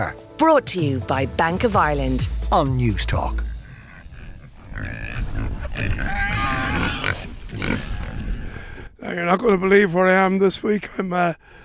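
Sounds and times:
speech: 0.0s - 3.5s, 4.8s - 6.4s, 9.1s - 11.6s
pigs grunting and squealing on a pig farm outside the village of Quin: 3.5s - 8.9s.

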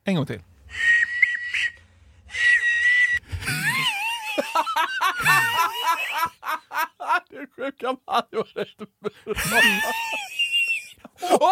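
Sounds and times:
speech: 0.0s - 0.9s, 7.4s - 10.3s, 11.2s - 11.5s
man making high whistling tones in his throat: 0.7s - 3.3s
giggly laughter: 3.3s - 11.5s.

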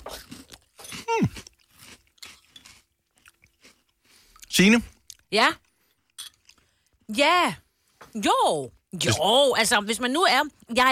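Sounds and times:
crunchy pebernød spice cookies chewed in cold buttermilk soup: 0.0s - 7.0s
speech: 4.6s - 5.6s, 7.1s - 10.9s.

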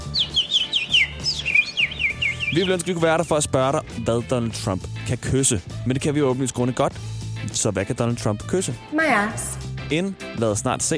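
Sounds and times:
person whistling a bird imitation: 0.0s - 2.9s
speech: 2.5s - 10.9s.

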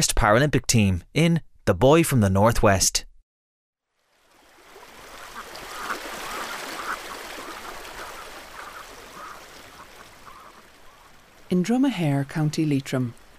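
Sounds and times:
speech: 0.0s - 3.1s, 11.5s - 13.2s
river water rushing: 4.0s - 13.3s
faint bird calls, possibly ducks: 5.1s - 11.5s.

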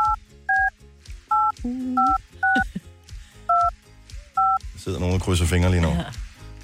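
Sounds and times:
telephone touch-tone dialing beeps: 0.0s - 0.7s, 1.3s - 2.6s, 3.5s - 3.7s, 4.4s - 4.6s
speech: 1.6s - 2.2s, 4.9s - 6.2s
laughter: 2.4s - 2.9s.

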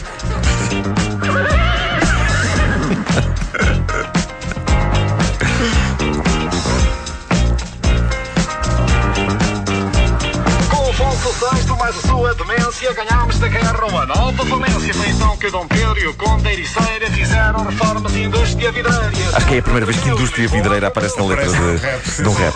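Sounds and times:
loud full band music: 0.0s - 22.5s
whinnying horse neighs with quavering pitch: 1.1s - 3.8s
speech: 15.3s - 22.5s.

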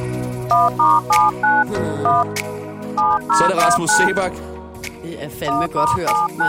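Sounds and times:
telephone keypad dialing tones as a number is punched in: 0.5s - 2.3s, 3.0s - 4.2s, 5.5s - 6.4s
speech: 0.5s - 6.4s.

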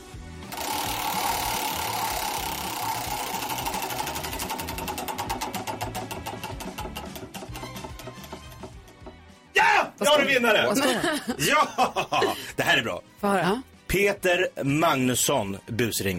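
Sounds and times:
prize wheel spun on a radio show ticking: 0.5s - 9.1s
speech: 10.0s - 16.1s
laughter: 10.1s - 12.8s.

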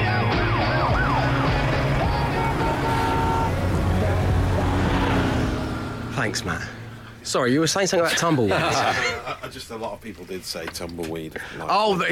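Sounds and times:
approaching car engine and road rumble: 0.0s - 11.4s
wailing siren: 0.6s - 6.0s
speech: 6.2s - 12.1s
laughter: 7.9s - 9.8s.

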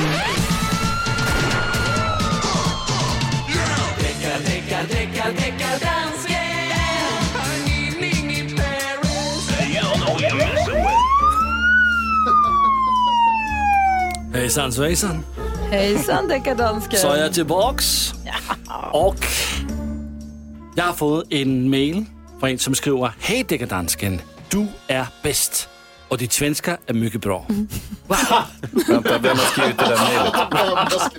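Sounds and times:
police car siren wailing: 0.0s - 4.5s, 9.1s - 14.3s
busy layered music: 0.0s - 31.1s
laughter: 9.1s - 13.1s, 18.3s - 18.9s, 27.5s - 31.1s
speech: 14.6s - 18.1s, 18.8s - 19.4s, 20.8s - 31.1s.

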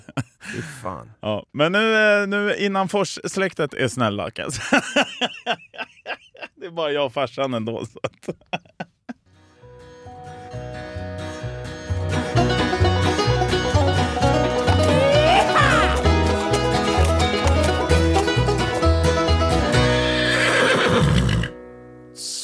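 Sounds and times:
laughter: 0.0s - 0.6s, 4.5s - 6.6s, 7.6s - 9.2s, 13.6s - 18.8s
speech: 0.6s - 5.9s, 6.6s - 8.6s
loud steady rhythmic music with a driving beat: 12.2s - 19.9s
horse neighing: 14.6s - 18.2s, 19.6s - 21.6s.

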